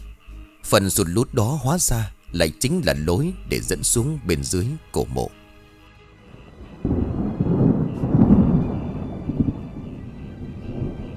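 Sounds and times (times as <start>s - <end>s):
speech: 0.7s - 5.4s
thunder rumbling during a storm: 6.3s - 11.1s.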